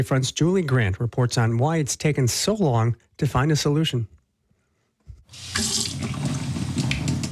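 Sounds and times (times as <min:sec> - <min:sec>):
speech: 0:00.0 - 0:04.2, 0:05.3 - 0:05.8
tap water running into a gallon-sized jug in Cadiz Ohio: 0:05.3 - 0:07.3.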